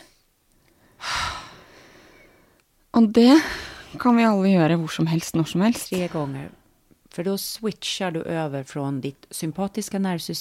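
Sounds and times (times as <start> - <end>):
deep inhale in a breathing exercise: 0.8 - 2.6
speech: 3.0 - 6.6, 7.2 - 10.3.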